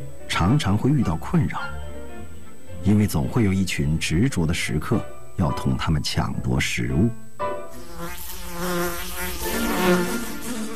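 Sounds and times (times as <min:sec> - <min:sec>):
speech: 0:00.4 - 0:01.8, 0:02.8 - 0:07.2
flies buzzing: 0:07.7 - 0:10.7.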